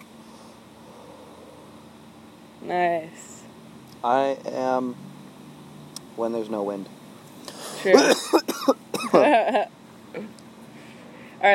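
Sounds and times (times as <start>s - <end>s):
speech: 2.6s - 3.4s, 4.0s - 5.1s, 6.2s - 7.0s, 7.8s - 10.4s
raspy throat-clearing hack: 7.5s - 9.2s
rough coughs: 7.6s - 9.3s.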